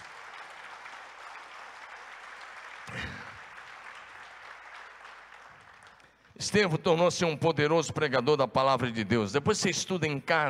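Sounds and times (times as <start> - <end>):
audience applauding: 0.0 - 6.4
speech: 2.9 - 3.3, 6.4 - 10.4.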